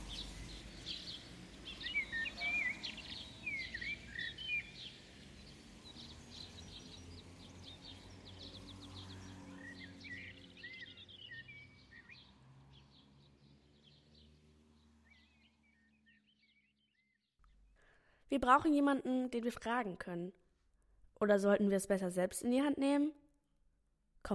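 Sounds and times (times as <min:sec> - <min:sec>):
birds chirping by a garden pond: 0:00.0 - 0:17.3
speech: 0:18.3 - 0:20.4, 0:21.2 - 0:23.2.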